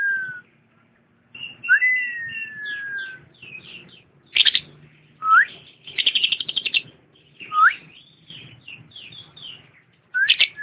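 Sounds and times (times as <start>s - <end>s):
champion lovebird song: 0.0s - 10.6s.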